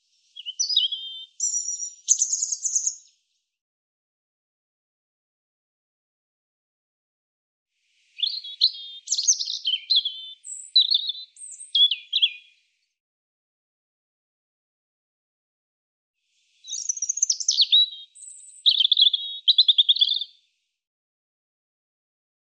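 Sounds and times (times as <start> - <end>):
European robin song: 0.0 - 3.6, 7.9 - 13.0, 16.3 - 20.6.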